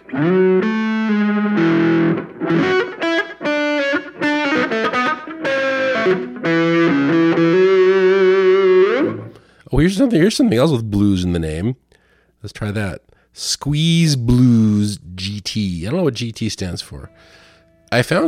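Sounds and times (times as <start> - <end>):
electric guitar through a digital delay with repeating echoes: 0.0 - 9.5
speech: 10.0 - 11.8, 12.4 - 18.2.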